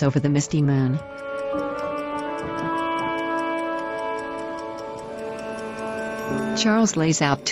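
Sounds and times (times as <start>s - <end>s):
speech: 0.0s - 1.6s, 6.6s - 7.4s
clock ticking: 0.0s - 7.4s
sustained humming musical tones: 0.0s - 7.4s.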